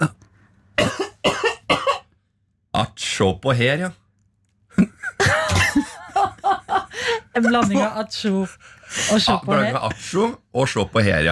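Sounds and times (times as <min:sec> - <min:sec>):
person in a shop coughing into their elbow: 0:00.8 - 0:02.1, 0:05.2 - 0:05.9
speech: 0:02.8 - 0:04.0, 0:07.4 - 0:11.2
laughter: 0:04.7 - 0:08.0.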